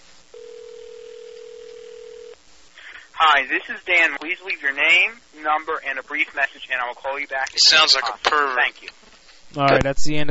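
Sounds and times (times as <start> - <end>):
faint hiss: 0.0 - 10.2
telephone ringback tone while a call is placed: 0.3 - 2.4
speech: 3.2 - 10.2.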